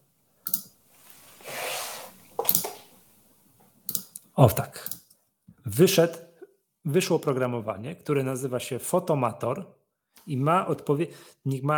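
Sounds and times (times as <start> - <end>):
computer mouse or keyboard clicks: 0.5 - 0.7, 2.4 - 2.8, 3.9 - 5.0
soft rustling: 0.8 - 3.8
speech: 4.4 - 4.9, 5.7 - 6.2, 6.8 - 11.7.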